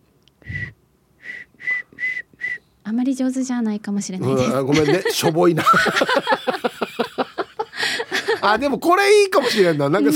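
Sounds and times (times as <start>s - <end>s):
person whistling short airy notes: 0.4s - 2.6s
speech: 2.9s - 6.4s, 8.4s - 10.1s
laughter: 4.2s - 10.1s.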